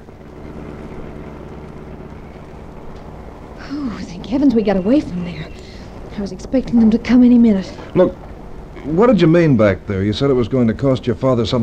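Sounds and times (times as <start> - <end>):
low engine rumble of a car cruising along a road: 0.0 - 11.6
speech: 3.7 - 5.6, 6.2 - 8.2, 8.8 - 11.6.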